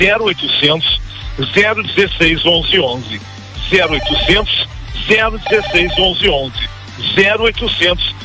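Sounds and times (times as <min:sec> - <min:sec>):
man talking quickly: 0:00.0 - 0:08.2
telephone ringing with short electronic tones: 0:02.6 - 0:06.8.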